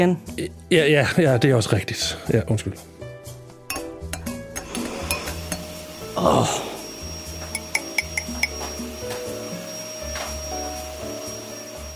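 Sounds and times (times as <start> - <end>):
speech: 0.0 - 2.9, 6.2 - 6.7
vacuum cleaner droning: 4.6 - 11.9.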